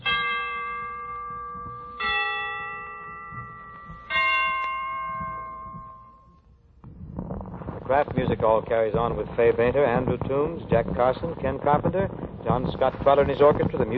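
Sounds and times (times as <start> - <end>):
Christmas bells ringing: 0.0 - 6.6
speech: 7.9 - 13.9.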